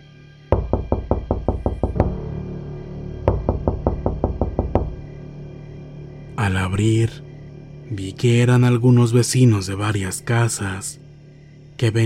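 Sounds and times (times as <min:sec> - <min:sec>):
sharp loud knocks on a door: 0:00.6 - 0:02.2, 0:03.3 - 0:05.2
speech: 0:06.4 - 0:07.3, 0:07.9 - 0:11.0, 0:11.8 - 0:12.0.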